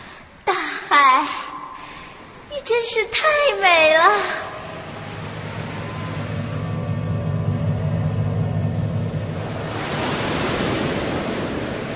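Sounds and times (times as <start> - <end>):
speech: 2.7 - 4.5
stormy ocean waves crashing on a small boat: 4.1 - 11.9.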